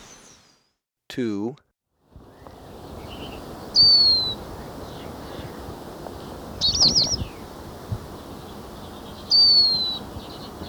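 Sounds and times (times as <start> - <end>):
lesser goldfinch giving thin descending whistles in Ecuador: 0.0 - 0.7
constant hiss: 2.1 - 10.6
lesser goldfinch twittering: 2.3 - 5.6, 6.6 - 7.5, 8.2 - 10.6.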